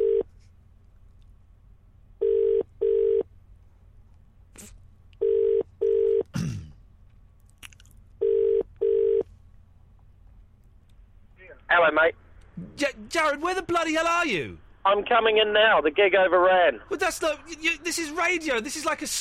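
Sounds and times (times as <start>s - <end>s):
outgoing phone call ringing tone: 0.0s - 0.3s, 2.2s - 3.2s, 5.2s - 6.3s, 8.2s - 9.2s
speech: 11.9s - 19.1s.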